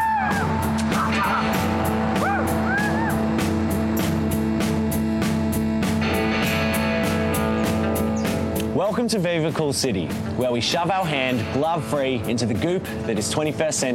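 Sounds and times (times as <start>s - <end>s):
person screaming after plunging into water: 0.0s - 3.3s
steady motor drone: 0.5s - 8.6s
speech: 9.0s - 13.9s.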